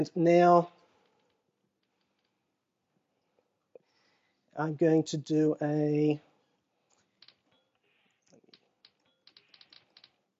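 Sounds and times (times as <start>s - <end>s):
speech: 0.0s - 0.8s, 4.6s - 6.3s
clacky key strikes on a keyboard: 8.5s - 10.2s.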